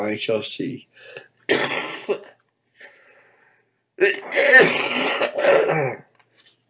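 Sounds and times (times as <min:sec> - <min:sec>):
speech: 0:00.0 - 0:02.2, 0:04.0 - 0:06.0
harsh raspy coughing: 0:01.5 - 0:02.4, 0:04.0 - 0:06.1
person clearing throat: 0:01.5 - 0:02.4, 0:04.0 - 0:06.1.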